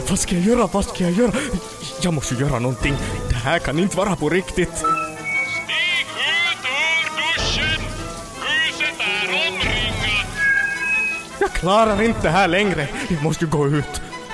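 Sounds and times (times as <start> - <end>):
shower water running: 0.0 - 14.3
speech: 0.1 - 5.0, 11.5 - 14.0.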